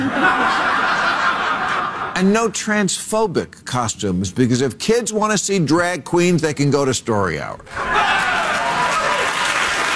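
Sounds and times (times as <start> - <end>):
laughter: 0.0 - 2.2
speech: 2.2 - 8.2
large studio audience cheering and clapping: 7.7 - 9.9
studio audience whoops and hollers: 7.8 - 9.4.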